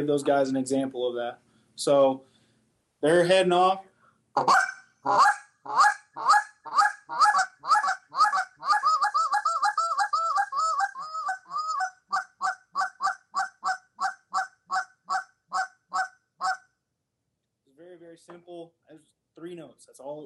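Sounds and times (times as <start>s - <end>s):
speech: 0.0s - 2.3s, 3.0s - 6.4s
goose call blowing clucks, double clucks and moan: 4.4s - 16.7s.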